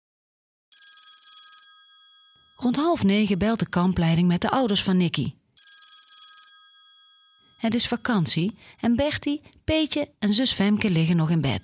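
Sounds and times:
telephone bell ringing: 0.7 - 3.8, 5.6 - 8.6, 11.5 - 11.6
speech: 2.6 - 5.4, 7.6 - 11.6.

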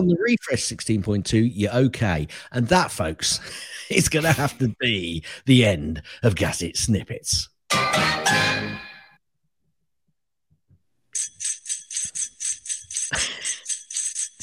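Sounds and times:
speech: 0.0 - 8.8
bright jingling bells shaken in a rhythmic pattern: 11.2 - 14.4.

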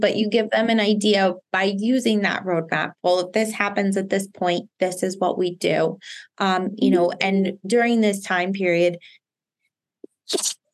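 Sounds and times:
speech: 0.0 - 9.2, 10.3 - 10.6
sneeze: 10.3 - 10.6.

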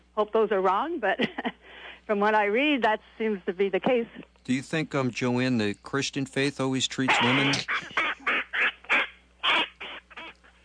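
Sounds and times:
speech: 0.2 - 8.0
parrot on a person's shoulder squawking: 7.1 - 10.4.

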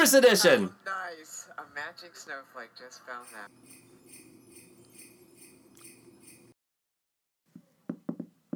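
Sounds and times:
speech: 0.0 - 3.8
bright jingling passage: 3.2 - 6.6
light quick knocking on a door: 7.9 - 8.5.

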